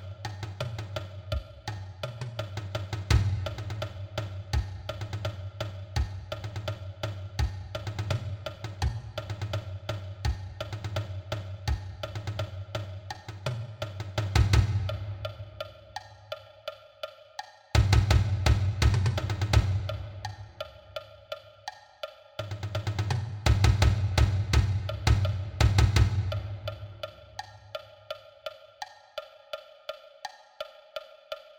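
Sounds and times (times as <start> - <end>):
marching bass drum: 0.5 - 15.6, 17.8 - 20.7, 22.5 - 27.1.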